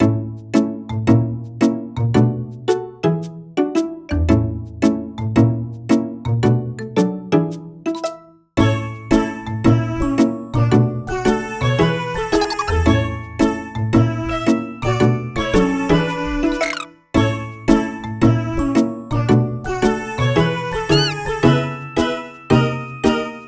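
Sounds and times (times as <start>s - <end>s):
lobby background music: 0.0s - 23.4s.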